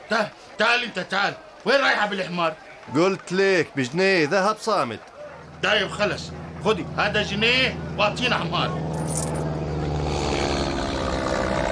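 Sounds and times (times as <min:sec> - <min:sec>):
speech: 0:00.1 - 0:09.4
airplane droning overhead: 0:05.2 - 0:11.6.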